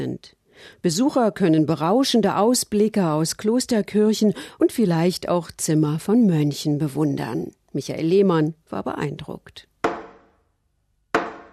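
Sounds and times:
speech: 0:00.0 - 0:09.7
hammer knocking on a wooden board calling to prayer: 0:09.8 - 0:10.4, 0:11.2 - 0:11.5.

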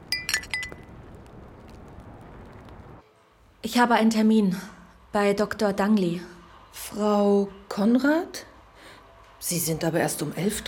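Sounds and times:
glasses clinking in a toast: 0:00.2 - 0:00.8
speech: 0:03.6 - 0:08.5, 0:09.4 - 0:10.6.

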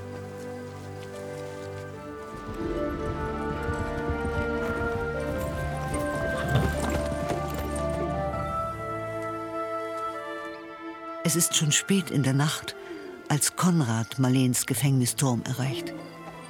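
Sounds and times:
tired horse's hooves clip-clopping at a walking pace: 0:00.0 - 0:10.6
sustained music: 0:00.0 - 0:16.4
speech: 0:02.4 - 0:03.3, 0:11.3 - 0:16.2.

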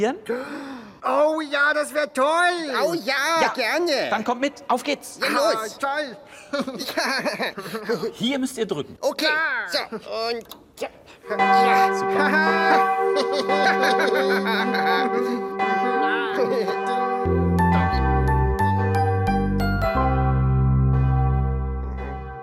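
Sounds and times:
speech: 0:00.0 - 0:17.4
laughter: 0:06.5 - 0:08.2, 0:12.2 - 0:15.6
bell ringing with bright sustained metallic tones: 0:11.3 - 0:22.4
deeper resonant chime notes struck in succession: 0:11.3 - 0:22.4.

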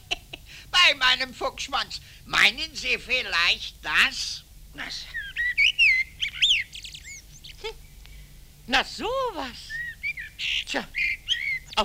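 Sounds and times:
faint low hum: 0:00.0 - 0:11.8
speech: 0:00.8 - 0:05.2, 0:08.7 - 0:09.8, 0:10.4 - 0:11.1
male blackbird singing by a lilac bush: 0:04.9 - 0:07.8, 0:09.4 - 0:11.8.

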